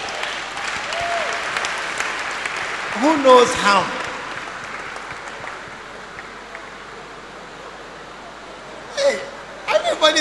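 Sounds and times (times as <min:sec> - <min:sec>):
audience clapping: 0:00.0 - 0:07.2
speech: 0:03.0 - 0:04.0.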